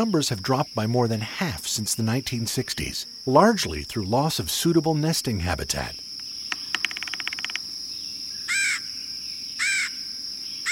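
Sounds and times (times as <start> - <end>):
speech: 0.0 - 6.1
steady high insect drone: 0.0 - 10.6
red-headed woodpecker giving harsh raspy calls: 5.7 - 10.0
rapid tapping notes: 6.5 - 7.6.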